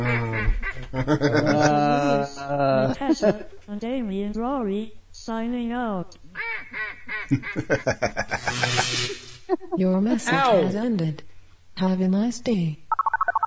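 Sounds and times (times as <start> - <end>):
ducks quacking: 0.0 - 1.6, 6.4 - 9.1
laughter: 0.0 - 3.6, 7.3 - 10.7
speech: 0.9 - 12.9.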